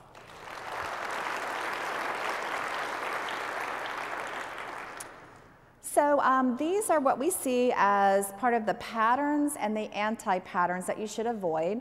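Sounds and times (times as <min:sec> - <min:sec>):
room full of people applauding: 0:00.0 - 0:05.4
speech: 0:06.0 - 0:11.7.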